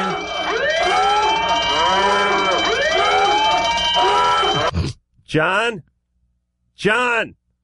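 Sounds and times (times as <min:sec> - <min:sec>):
wailing siren sound effect: 0:00.0 - 0:04.7
speech: 0:05.3 - 0:05.9, 0:06.8 - 0:07.4.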